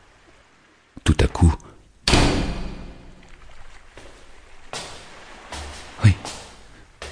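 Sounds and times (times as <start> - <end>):
speech: 1.1 - 1.7
heavy footsteps climbing a staircase in a reverberant space: 4.0 - 7.1.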